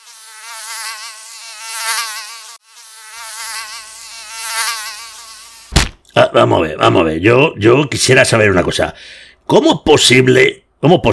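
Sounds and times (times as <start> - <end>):
fly buzzing: 0.0 - 6.0
sharp knock: 5.7 - 6.0
speech: 6.3 - 11.1.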